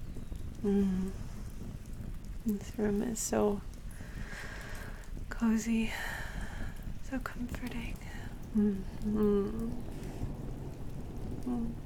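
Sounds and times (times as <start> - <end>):
steady rain falling outside in the wind: 0.0 - 11.8
soft voice murmuring: 0.6 - 1.3, 7.6 - 9.9, 11.4 - 11.8
speech: 0.6 - 1.3, 2.4 - 3.7, 5.4 - 6.2, 7.1 - 10.0, 11.4 - 11.8.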